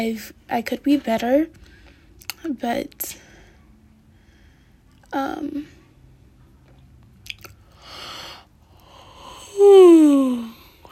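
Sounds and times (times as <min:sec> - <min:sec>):
speech: 0:00.0 - 0:03.2, 0:05.1 - 0:05.8, 0:09.6 - 0:10.6
person yawning with a drawn-out downward groan: 0:09.2 - 0:10.6.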